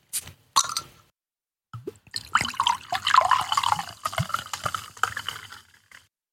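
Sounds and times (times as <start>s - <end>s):
drinks pouring into glasses: 1.8s - 6.1s.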